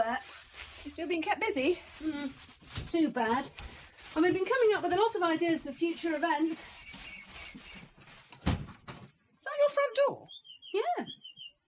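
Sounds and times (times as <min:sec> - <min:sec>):
speech: 0:00.2 - 0:06.8, 0:09.8 - 0:11.2
front door opening with a dull thump: 0:08.4 - 0:09.0.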